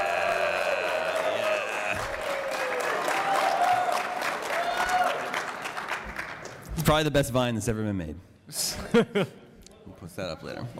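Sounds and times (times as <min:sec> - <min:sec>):
live crowd cheering and shouting: 0:00.0 - 0:05.4
live audience clapping: 0:00.0 - 0:07.1
speech: 0:06.9 - 0:09.4, 0:10.0 - 0:10.7.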